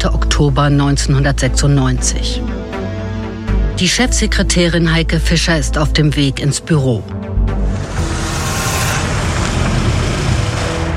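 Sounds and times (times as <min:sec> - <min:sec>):
speech: 0:00.0 - 0:02.6, 0:03.8 - 0:07.2
car engine rumbling: 0:07.4 - 0:10.9
road and tire noise of a rolling car: 0:07.5 - 0:10.9.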